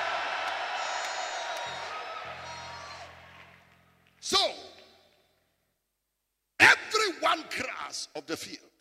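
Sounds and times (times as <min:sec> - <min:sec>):
large audience screaming and cheering: 0:00.0 - 0:03.7
speech: 0:07.4 - 0:08.7.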